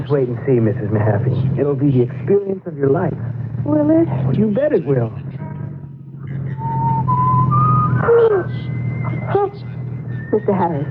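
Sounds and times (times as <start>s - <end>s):
speech: 0.1s - 5.2s, 8.0s - 8.7s, 10.3s - 10.8s
person whistling a thin wavering tune: 6.6s - 9.5s
short squealing whimper-like sounds: 6.6s - 10.4s.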